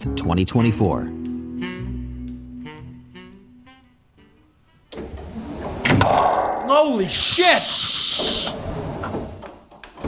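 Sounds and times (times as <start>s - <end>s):
speech: 0.0s - 1.2s, 6.8s - 9.2s
door opening or closing with a sharp hissing whoosh: 5.1s - 9.6s.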